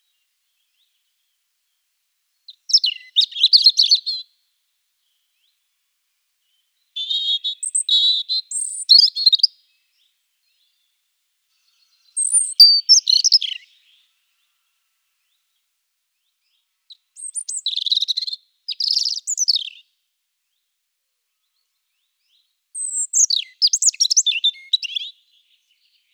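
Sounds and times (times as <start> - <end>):
European robin singing: 2.5 - 4.3, 6.4 - 10.9, 11.6 - 14.6, 16.2 - 19.9, 21.5 - 26.1.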